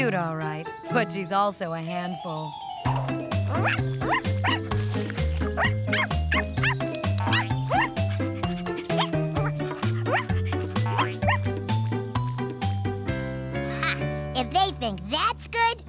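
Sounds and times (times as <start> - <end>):
speech: 0.0 - 4.4
steady tuneful music: 0.0 - 15.8
dog barking and yipping: 3.4 - 12.6.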